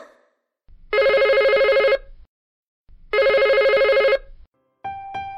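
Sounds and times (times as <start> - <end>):
telephone ringing in long electronic bursts: 0.9 - 2.1, 3.1 - 4.3
melodic ringtone of bright stepping notes: 3.2 - 4.2.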